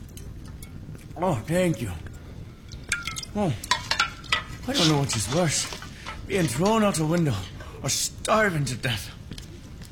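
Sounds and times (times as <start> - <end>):
speech: 1.2 - 2.1, 3.4 - 3.7, 4.7 - 9.2
water splashing and dripping: 2.6 - 6.5.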